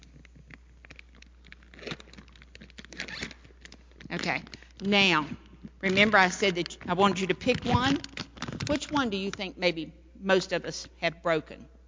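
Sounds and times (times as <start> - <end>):
crinkly plastic rustling: 0.0 - 9.5
heavy-duty plastic bag being zipped closed: 0.8 - 5.2, 5.8 - 9.5
speech: 4.1 - 8.1, 8.7 - 11.7.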